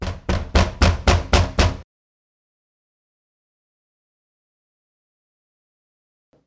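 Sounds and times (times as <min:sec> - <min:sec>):
knocking on a front door: 0:00.0 - 0:01.8.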